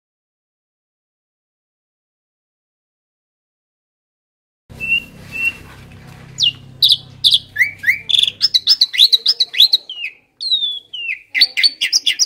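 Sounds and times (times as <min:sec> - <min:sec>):
Asian pied starling song: 0:04.8 - 0:05.7, 0:06.4 - 0:12.2.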